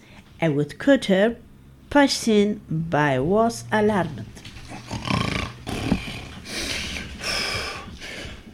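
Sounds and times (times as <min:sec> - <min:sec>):
speech: 0:00.4 - 0:04.4
exaggerated snoring of a sleeping wolf: 0:04.7 - 0:07.9.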